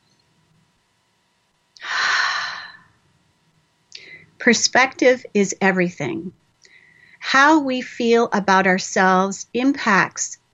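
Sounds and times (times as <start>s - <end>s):
deep breath: 1.8s - 2.9s, 6.6s - 7.2s
speech: 4.4s - 6.4s, 7.3s - 10.4s.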